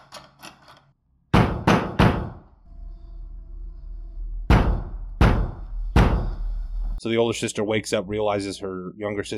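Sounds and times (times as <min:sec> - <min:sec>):
loud heavy banging on a door: 0:01.3 - 0:02.4, 0:04.5 - 0:06.4
low droning hum: 0:02.6 - 0:07.0
speech: 0:07.0 - 0:09.3.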